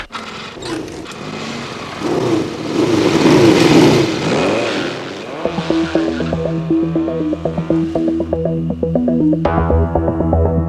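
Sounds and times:
small moped engines revving and pulling away: 0.1s - 10.5s.

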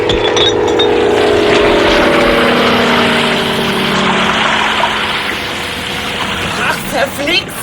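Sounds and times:
firefighting plane propeller engine droning overhead: 0.0s - 7.6s
loud steady rush of water dropped from a firefighting plane: 1.0s - 7.6s.

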